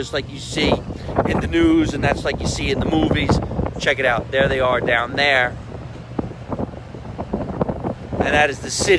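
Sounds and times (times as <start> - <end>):
speech: 0.0 - 5.6, 8.2 - 8.9
steady wind blowing outdoors over a city buffeting the microphone: 0.0 - 8.9.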